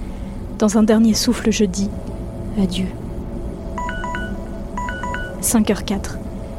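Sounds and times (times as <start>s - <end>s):
steady low hum: 0.0s - 6.5s
speech: 0.6s - 3.0s, 5.4s - 6.2s
device electronic notification chime beeps: 3.8s - 5.5s.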